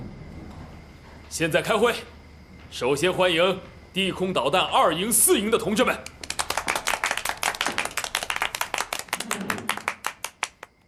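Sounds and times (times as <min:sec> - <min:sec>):
speech: 0:01.3 - 0:06.2
audience in a meeting room applauding: 0:06.0 - 0:10.8.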